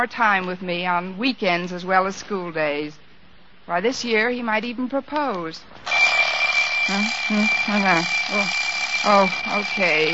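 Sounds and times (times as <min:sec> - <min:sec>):
speech: 0:00.0 - 0:03.0, 0:03.7 - 0:06.1, 0:06.9 - 0:10.1
alarm clock ringing: 0:05.9 - 0:10.1.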